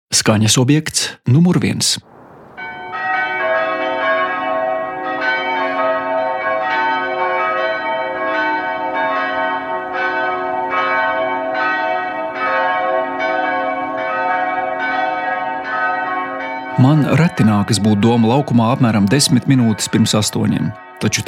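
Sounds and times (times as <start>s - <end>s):
speech: 0.1s - 2.2s, 17.1s - 21.2s
cathedral church bells ringing in the morning over the cathedral square: 2.6s - 21.2s.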